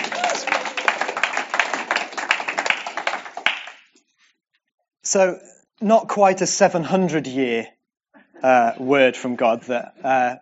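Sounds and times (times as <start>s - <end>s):
crowd applauding: 0.0s - 4.0s
speech: 5.1s - 7.8s, 8.4s - 10.4s.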